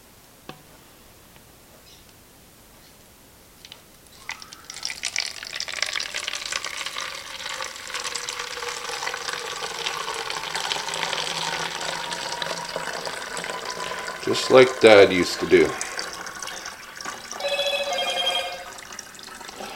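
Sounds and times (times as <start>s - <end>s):
fixer chemical poured into a bottle: 3.6s - 19.7s
steady running water: 3.6s - 19.7s
speech: 14.3s - 15.9s
phone message notification chime: 17.4s - 18.9s.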